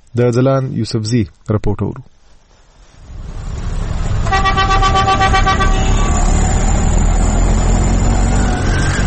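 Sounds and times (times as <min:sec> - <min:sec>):
speech: 0:00.2 - 0:02.2
busy road traffic of cars, buses and rickshaws in Peshawar's Khyber Bazaar: 0:02.4 - 0:09.0
high piercing vehicle horn blaring in Peshawar's Khyber Bazaar: 0:04.2 - 0:06.4.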